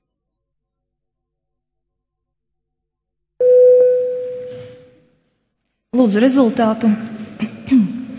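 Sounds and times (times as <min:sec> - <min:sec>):
electronic voting bell tone in a parliament chamber: 0:03.4 - 0:05.0
speech: 0:06.0 - 0:07.8.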